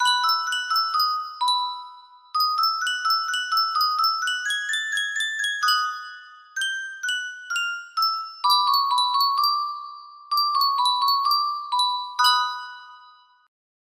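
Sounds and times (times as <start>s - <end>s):
music box melody: 0.0s - 13.5s.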